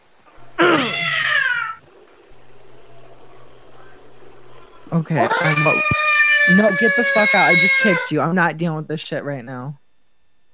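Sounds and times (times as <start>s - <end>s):
quiet hum: 0.0s - 10.5s
cat meowing: 0.6s - 1.8s, 5.2s - 8.1s
speech: 5.0s - 9.8s.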